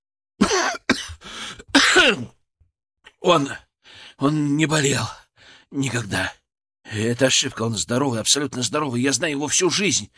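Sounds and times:
man clearing his throat and coughing as his voice fails: 0.4 - 2.4
speech: 2.0 - 2.4, 3.2 - 3.6, 4.2 - 10.1.

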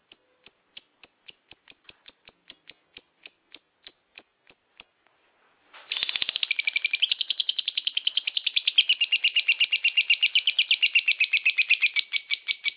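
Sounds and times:
lovebird song of high scratchy chirps: 5.9 - 12.7.

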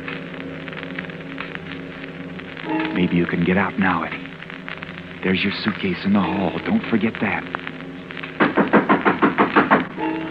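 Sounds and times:
low steady hum: 0.0 - 10.2
speech: 2.7 - 4.2, 5.2 - 7.7
firm knocking on a door: 8.4 - 9.9.

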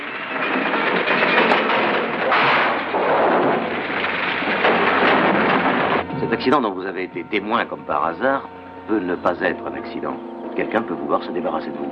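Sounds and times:
crackling like fire or debris: 0.0 - 10.1
loud sustained explosion roaring: 0.3 - 6.6
speech: 6.4 - 11.9.

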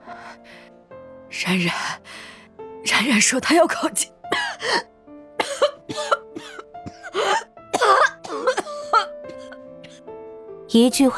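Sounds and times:
speech: 1.3 - 4.9, 10.8 - 11.1
violent harsh hoarse human coughing: 5.4 - 10.0.

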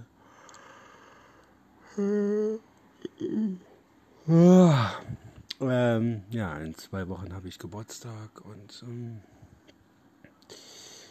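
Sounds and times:
person yawning with voiced groaning breaths: 1.8 - 5.2
speech: 2.0 - 3.7, 4.3 - 5.1, 6.0 - 9.4.

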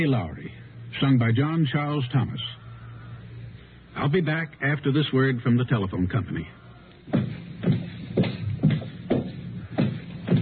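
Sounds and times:
speech: 0.0 - 2.6, 4.0 - 7.2
firm heel strike footsteps at an even pace: 7.0 - 10.4.

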